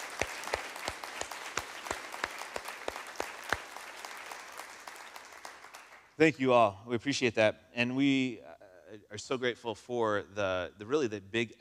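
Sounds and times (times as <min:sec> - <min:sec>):
audience applauding: 0:00.0 - 0:06.2
speech: 0:06.2 - 0:11.5.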